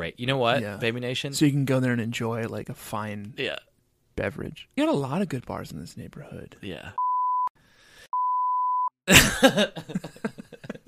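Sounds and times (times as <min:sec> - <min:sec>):
speech: 0:00.0 - 0:07.0, 0:09.1 - 0:10.4
censor bleep covering speech: 0:07.0 - 0:07.5, 0:08.2 - 0:08.9
rough throaty coughing and groaning vocal noises: 0:09.1 - 0:09.8.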